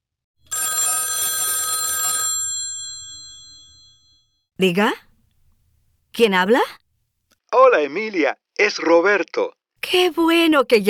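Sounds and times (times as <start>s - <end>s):
old-style telephone bell ringing: 0.4s - 4.5s
speech: 4.6s - 5.1s, 6.2s - 6.8s, 7.5s - 10.8s.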